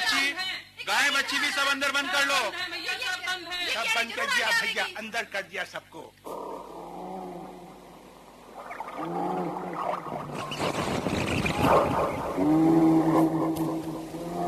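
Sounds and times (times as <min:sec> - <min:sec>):
speech: 0:01.2 - 0:06.4, 0:11.7 - 0:13.3
bear growling: 0:06.2 - 0:14.4.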